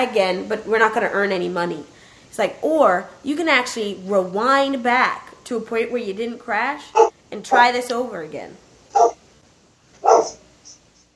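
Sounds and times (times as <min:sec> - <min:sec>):
speech: 0:00.0 - 0:09.2
dog barking: 0:09.0 - 0:09.2, 0:10.0 - 0:10.4.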